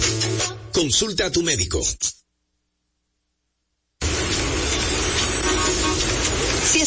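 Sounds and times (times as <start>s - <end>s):
speech: 0.8s - 2.2s
idling car engines in a traffic jam: 4.0s - 6.8s.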